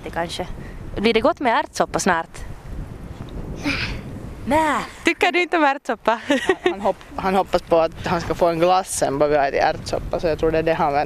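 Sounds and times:
wind buffeting the microphone outdoors: 0:00.0 - 0:11.0
speech: 0:00.1 - 0:02.4, 0:04.5 - 0:11.0
laughter: 0:06.2 - 0:06.9.

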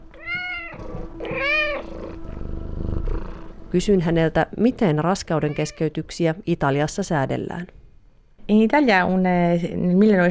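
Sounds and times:
domestic cat purring in a home in Rome: 0:00.0 - 0:06.2
domestic cat meowing: 0:00.1 - 0:02.0, 0:05.3 - 0:06.0
speech: 0:03.7 - 0:07.8, 0:08.5 - 0:10.3.

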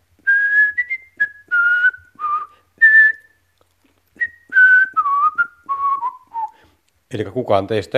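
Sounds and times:
person whistling a short melodic tune: 0:00.2 - 0:03.4, 0:04.2 - 0:06.7
speech: 0:07.1 - 0:07.9.

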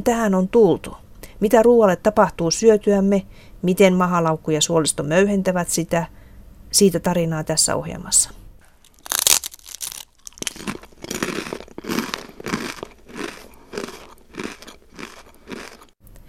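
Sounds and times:
speech: 0:00.0 - 0:08.4
chewing crunchy rye crispbread: 0:08.6 - 0:16.0.

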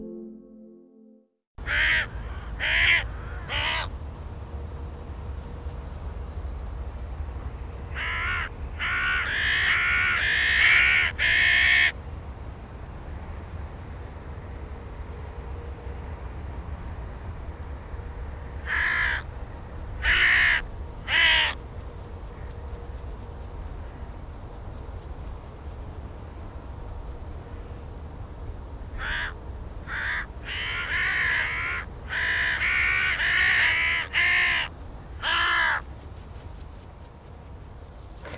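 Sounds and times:
crow cawing: 0:01.6 - 0:03.9, 0:07.9 - 0:11.9, 0:18.6 - 0:19.3, 0:20.0 - 0:21.6, 0:28.9 - 0:35.9
low outdoor rumble: 0:02.0 - 0:11.1, 0:11.9 - 0:38.3.

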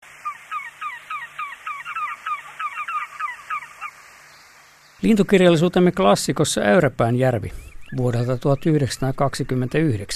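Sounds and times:
steady background hiss: 0:00.0 - 0:10.1
Lesser White-fronted Goose giving high squeaky yelping calls: 0:00.2 - 0:04.0
speech: 0:05.0 - 0:10.1.

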